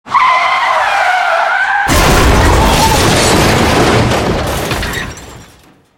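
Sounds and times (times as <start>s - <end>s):
car tires skidding: 0.0s - 1.9s
car crash: 1.6s - 5.9s.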